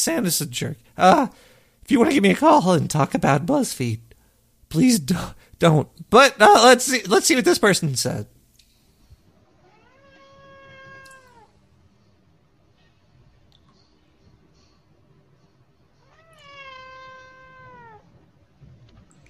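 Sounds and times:
speech: 0.0 - 4.1, 4.7 - 8.4
low hum: 0.0 - 19.2
cat meowing: 9.5 - 11.5, 16.0 - 18.2.

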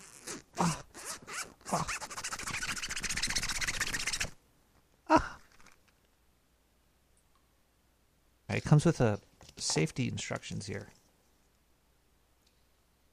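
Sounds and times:
zipper on a protective pouch being pulled open: 0.0 - 4.4
speech: 8.6 - 11.0.

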